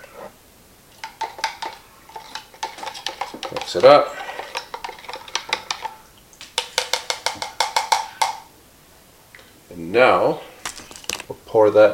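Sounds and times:
faint steady hiss: 0.0 - 11.9
old stir stick being rinsed, clinking against a container: 1.0 - 8.5
speech: 3.7 - 4.2, 9.9 - 10.5, 11.3 - 11.9.

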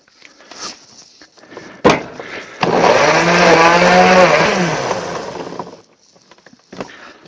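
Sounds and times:
sharp clunk: 1.8 - 2.2
blender blending marinade ingredients: 2.6 - 5.8.

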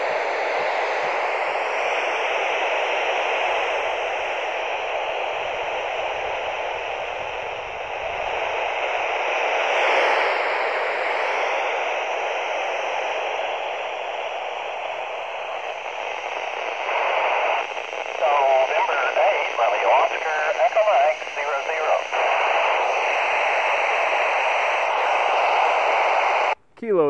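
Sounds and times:
radio static after satellite signal loss: 0.3 - 26.6.

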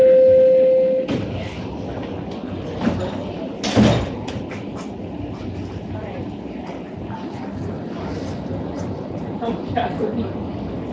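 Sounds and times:
subway door warning tone: 0.0 - 1.1
subway train doors sliding shut with a thud and clunk: 1.0 - 4.9.

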